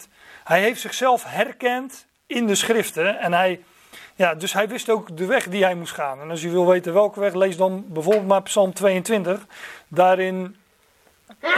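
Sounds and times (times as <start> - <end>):
speech: 0.0 - 10.6, 11.3 - 11.5
quick intake of breath: 9.5 - 9.9
person sneezing: 11.3 - 11.5.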